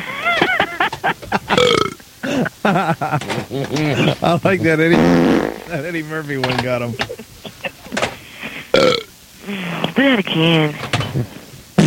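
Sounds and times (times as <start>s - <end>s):
laughter: 0.0s - 8.7s
loud drawn-out croaking belches: 1.5s - 2.4s, 4.9s - 5.8s, 8.7s - 9.1s
speech: 2.7s - 7.1s, 10.0s - 11.3s.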